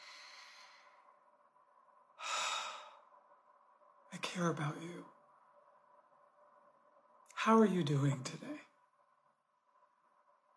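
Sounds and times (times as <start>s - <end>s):
deep breathing: 0.0s - 1.2s, 2.2s - 3.3s
speech: 4.1s - 5.2s, 7.4s - 8.7s.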